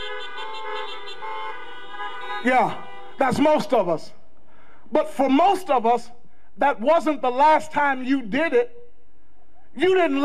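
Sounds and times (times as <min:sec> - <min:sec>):
car horn honking: 0:00.0 - 0:03.7
speech: 0:02.4 - 0:04.2, 0:04.9 - 0:08.8, 0:09.8 - 0:10.2.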